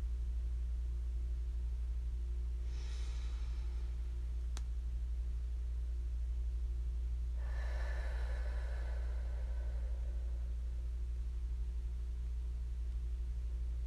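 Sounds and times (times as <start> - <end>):
steady low hum: 0.0 - 13.8
slow deep breathing during meditation: 2.6 - 4.2, 7.4 - 11.0.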